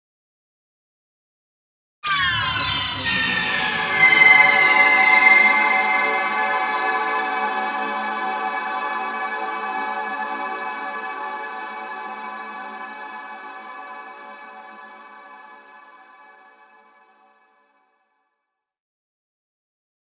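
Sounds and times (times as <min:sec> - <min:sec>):
bed synth vocal pad with shimmer delay: 0:02.1 - 0:17.0.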